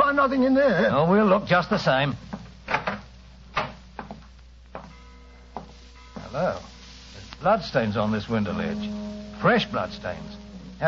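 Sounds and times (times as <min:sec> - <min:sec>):
speech: 0:00.2 - 0:02.3, 0:06.3 - 0:06.8, 0:07.4 - 0:10.8
bedroom door being opened: 0:02.7 - 0:04.2.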